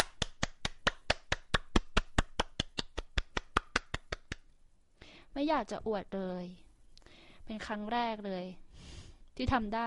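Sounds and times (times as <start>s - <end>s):
hands clapping: 0.0s - 4.4s
speech: 5.4s - 6.6s, 7.5s - 8.6s, 9.4s - 9.8s.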